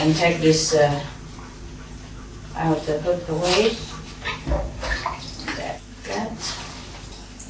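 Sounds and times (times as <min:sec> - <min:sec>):
speech: 0:00.0 - 0:01.2, 0:02.6 - 0:04.7
water sloshing in a basin as something is washed in warm salty water: 0:00.0 - 0:07.4.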